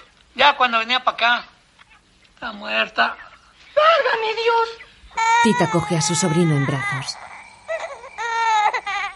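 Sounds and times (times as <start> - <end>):
speech: 0.4 - 1.5, 2.4 - 3.2, 3.8 - 7.3
hungry baby crying: 5.1 - 9.1.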